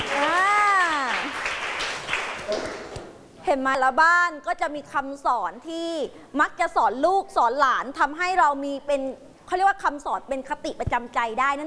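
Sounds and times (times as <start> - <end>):
group of schoolchildren applauding a classmate: 0.0 - 2.9
person calling out in a rising and falling whoop: 0.1 - 1.3
speech: 3.5 - 11.6.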